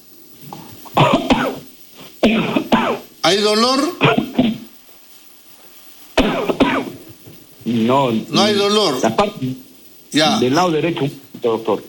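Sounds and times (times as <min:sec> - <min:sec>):
faint murmur of noise: 0:00.3 - 0:11.8
person coughing hard during medical exam: 0:00.9 - 0:03.1, 0:03.9 - 0:04.7, 0:06.2 - 0:07.0
speech: 0:03.3 - 0:04.6, 0:07.7 - 0:11.8.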